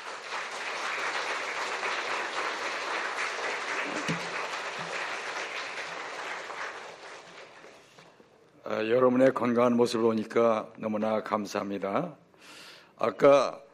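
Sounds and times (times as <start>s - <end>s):
large audience applauding at a church service: 0.0s - 7.9s
speech: 8.8s - 12.2s, 13.0s - 13.6s.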